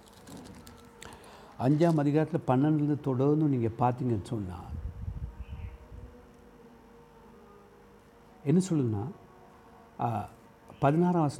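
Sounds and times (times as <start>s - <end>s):
thin Bible pages being turned: 0.0s - 2.2s
speech: 1.6s - 4.8s, 8.4s - 9.2s, 10.0s - 11.3s.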